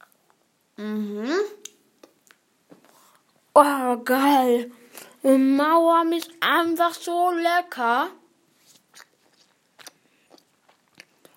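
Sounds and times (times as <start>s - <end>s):
speech: 0.8s - 1.6s, 3.6s - 8.2s
chewing on candy: 8.6s - 11.3s.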